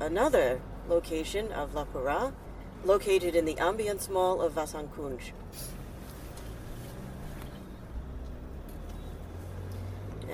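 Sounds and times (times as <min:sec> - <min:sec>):
speech: 0:00.0 - 0:05.7
road and engine rumble inside a moving car in India: 0:00.0 - 0:10.3.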